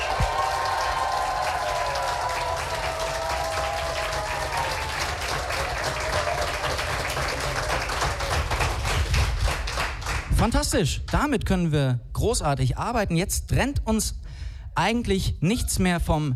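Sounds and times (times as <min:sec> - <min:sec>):
audience applause at a live event: 0:00.0 - 0:10.3
speech: 0:10.4 - 0:14.2, 0:14.8 - 0:16.3.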